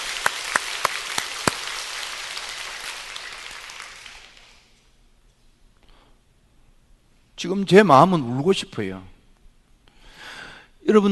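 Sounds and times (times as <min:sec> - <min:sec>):
congregation clapping: 0:00.0 - 0:04.8
speech: 0:07.4 - 0:09.1.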